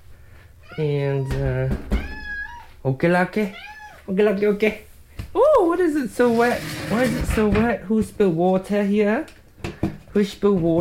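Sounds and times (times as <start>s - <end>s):
cat meowing: 0.6s - 2.8s, 3.5s - 4.1s
speech: 0.8s - 2.0s, 2.8s - 9.4s, 10.1s - 10.7s.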